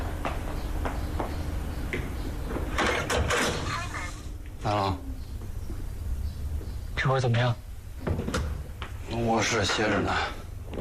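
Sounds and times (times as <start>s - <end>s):
steady hiss: 0.0s - 10.8s
door being opened at someone's home: 2.5s - 4.0s
speech: 7.1s - 7.6s, 9.2s - 10.4s.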